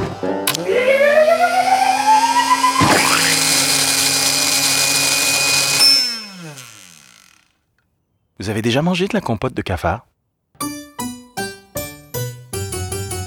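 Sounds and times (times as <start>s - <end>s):
kitchen blender running: 0.5s - 7.6s
speech: 8.4s - 10.1s.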